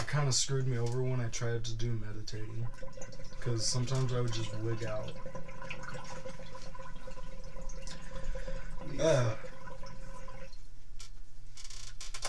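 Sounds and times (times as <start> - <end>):
water dripping: 0.0 - 11.3
steady low hum: 0.0 - 12.2
speech: 0.1 - 7.1, 8.9 - 9.5
water splashing as it is emptied from a bong: 0.8 - 10.7.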